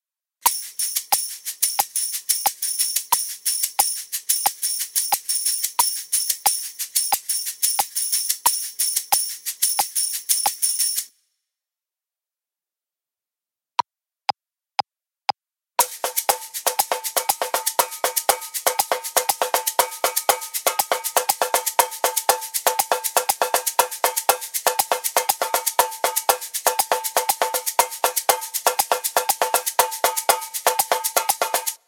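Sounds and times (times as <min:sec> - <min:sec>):
shaker: 0:00.5 - 0:11.2, 0:15.8 - 0:31.8
tambourine: 0:00.5 - 0:11.2, 0:15.8 - 0:31.8.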